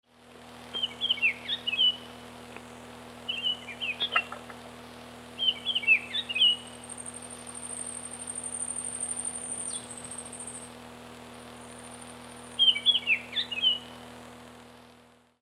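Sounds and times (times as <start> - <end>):
black-headed bird birdsong: 0.7 - 4.7, 5.3 - 10.7, 12.4 - 14.0.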